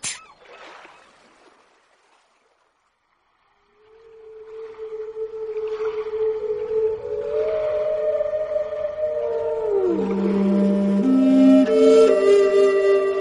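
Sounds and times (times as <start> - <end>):
humpback whale song as a long drawn-out moaning call: 3.7 - 13.1.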